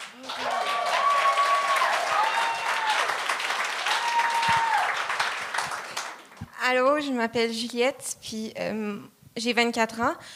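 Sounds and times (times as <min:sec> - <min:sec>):
crowd applauding: 0:00.0 - 0:06.5
speech: 0:06.7 - 0:10.3.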